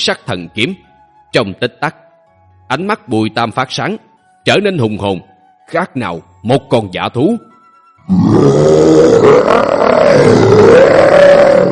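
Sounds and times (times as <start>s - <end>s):
speech: 0.0s - 2.0s, 2.7s - 11.7s
lion roaring: 8.1s - 11.7s.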